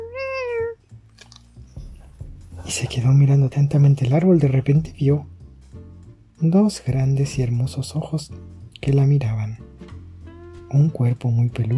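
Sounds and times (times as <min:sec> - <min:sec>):
cat meowing from up in a tree: 0:00.0 - 0:00.8
speech: 0:02.7 - 0:05.3, 0:06.4 - 0:09.6, 0:10.7 - 0:11.7.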